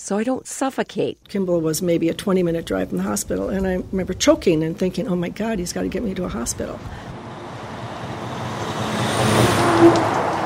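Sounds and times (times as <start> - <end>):
speech: 0.0 - 7.1
heavy logging truck engine rumbling past in a tiny town in northern Wisconsin: 3.5 - 10.4.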